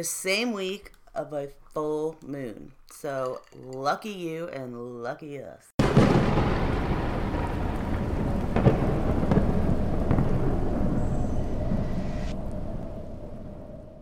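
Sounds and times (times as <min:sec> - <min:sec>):
speech: 0:00.0 - 0:06.6
steady rain: 0:05.8 - 0:10.8
deep rolling thunder from a thunderstorm heard through open windows: 0:05.8 - 0:14.0.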